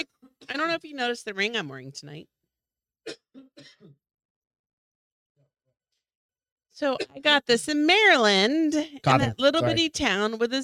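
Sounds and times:
speech: 0.5 - 2.4, 6.8 - 10.6
person coughing: 3.1 - 4.0.

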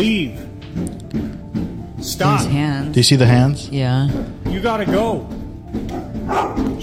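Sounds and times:
speech: 0.0 - 1.2, 2.0 - 6.8
dog barking: 5.9 - 6.8.

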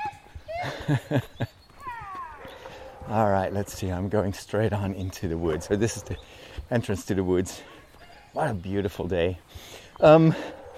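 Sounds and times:
laughter: 0.5 - 1.8
speech: 0.8 - 1.6, 3.1 - 7.8, 8.4 - 10.7
puppies growly barks: 2.4 - 3.6, 5.2 - 8.4, 10.3 - 10.7.

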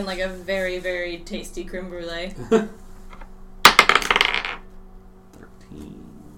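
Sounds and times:
speech: 0.0 - 2.8, 5.7 - 6.0
several dice rolling on a table: 3.1 - 4.6.

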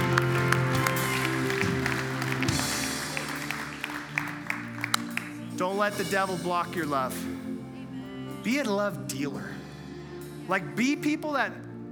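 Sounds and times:
crowd clapping: 0.0 - 5.9
sustained musical tones: 0.0 - 11.9
speech: 5.6 - 7.4, 8.4 - 9.6, 10.5 - 11.6.

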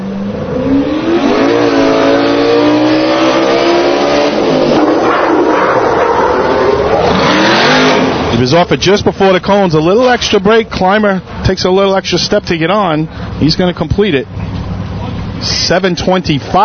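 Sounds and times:
competition team's truck engine revving hard: 0.0 - 10.2
speech: 8.5 - 14.4, 15.4 - 16.6.

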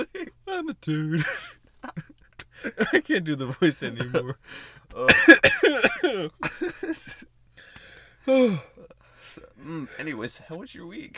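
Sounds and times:
breathy laughter: 0.0 - 7.2
harsh coughing fit: 0.0 - 10.6
speech: 0.8 - 1.6, 2.7 - 7.4, 8.2 - 11.1.

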